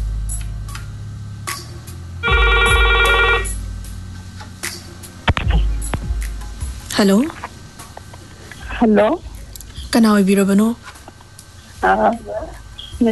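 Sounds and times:
low steady hum: 0.0 - 13.1
telephone trilling ring: 2.2 - 3.5
speech: 7.0 - 7.5, 8.8 - 9.3, 9.9 - 10.9, 11.8 - 13.1.

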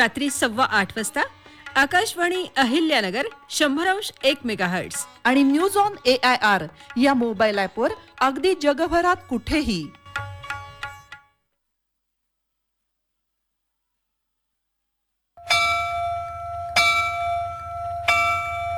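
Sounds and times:
speech: 0.0 - 10.0
school bell ringing: 15.4 - 18.7.

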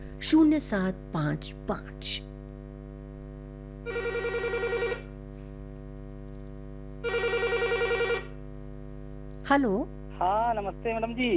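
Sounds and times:
steady low hum: 0.0 - 11.3
speech: 0.2 - 2.3, 9.5 - 11.3
telephone ringing: 3.8 - 5.2, 7.0 - 8.4.

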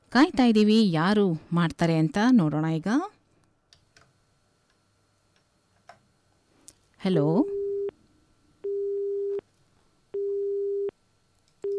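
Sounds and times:
speech: 0.1 - 3.1, 7.0 - 7.6
telephone busy tone after a call is cut off: 7.5 - 7.9, 8.6 - 9.4, 10.2 - 10.9.

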